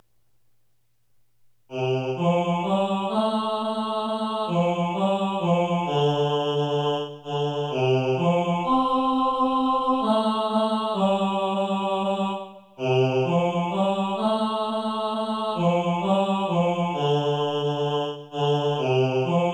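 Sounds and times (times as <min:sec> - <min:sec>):
tenor singing: 0:01.7 - 0:19.5.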